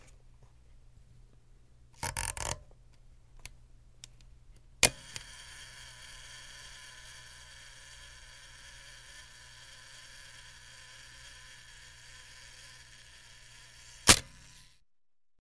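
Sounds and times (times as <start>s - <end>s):
camera self-timer being cocked and started: 2.0s - 2.5s, 4.9s - 14.8s.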